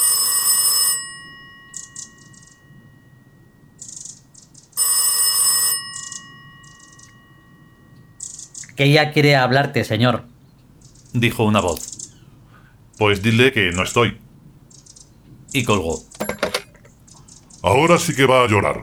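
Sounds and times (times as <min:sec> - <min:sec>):
telephone hidden in a castor-oil plant ringing: 0:00.0 - 0:03.8, 0:04.8 - 0:08.2, 0:16.0 - 0:16.9
speech: 0:08.8 - 0:10.3, 0:11.1 - 0:11.9, 0:13.0 - 0:14.2, 0:15.6 - 0:16.1, 0:17.6 - 0:18.8.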